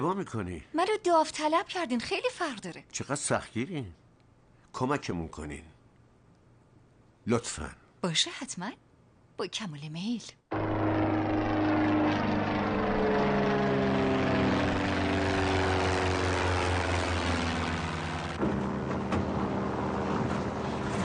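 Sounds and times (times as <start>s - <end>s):
speech: 0.0s - 4.0s, 4.7s - 5.7s, 7.2s - 8.8s, 9.4s - 10.7s
propeller plane engine droning in flight: 10.5s - 21.0s.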